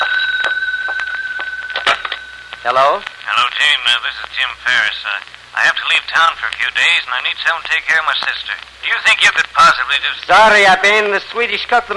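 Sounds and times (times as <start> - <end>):
telephone ringing with high electronic warble: 0.0 - 3.8
speech: 2.6 - 11.9.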